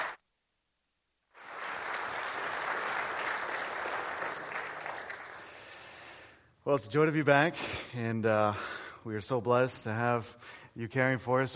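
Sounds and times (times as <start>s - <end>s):
audience at a Baptist church applauding to welcome a speaker: 1.4s - 6.0s
speech: 6.6s - 11.5s.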